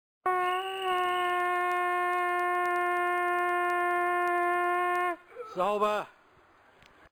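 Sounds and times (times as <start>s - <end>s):
horn: 0.2s - 5.4s.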